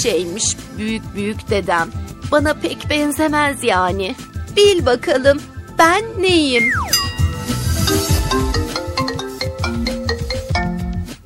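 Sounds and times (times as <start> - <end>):
speech: 0.0 - 7.6
mobile phone ringtone with electronic melody over thumping beat: 6.9 - 11.1.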